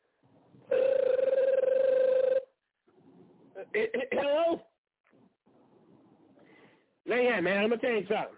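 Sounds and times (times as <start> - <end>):
outgoing phone call ringback tone: 0.7 - 2.6
speech: 3.7 - 4.7, 7.1 - 8.3.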